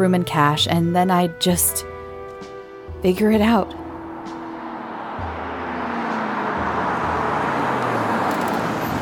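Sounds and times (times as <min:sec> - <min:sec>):
speech: 0:00.0 - 0:01.9, 0:03.0 - 0:03.8
road and tire noise: 0:01.8 - 0:09.0
car engine rumbling pulling into a parking lot: 0:02.1 - 0:09.0.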